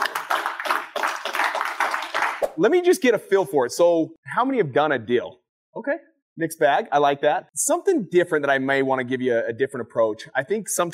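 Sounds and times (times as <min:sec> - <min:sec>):
audience at a lunch-and-learn event applauding a speaker: 0:00.0 - 0:02.5
speech: 0:02.6 - 0:10.9.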